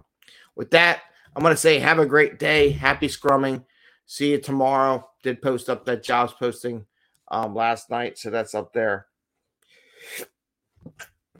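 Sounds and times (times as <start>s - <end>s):
speech: 0.4s - 9.1s, 10.0s - 11.1s
person sneezing: 10.0s - 10.4s.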